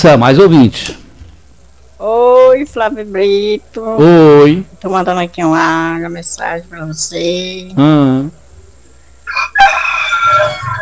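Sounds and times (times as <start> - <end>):
speech: 0.0 - 1.0, 2.0 - 8.4
rooster crowing: 9.2 - 10.8.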